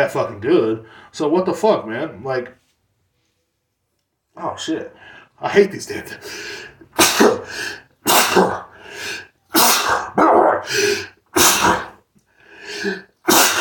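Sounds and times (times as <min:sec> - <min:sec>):
speech: 0:00.0 - 0:02.6, 0:04.4 - 0:09.2, 0:10.2 - 0:11.8
person sneezing: 0:06.2 - 0:12.0, 0:12.7 - 0:13.5.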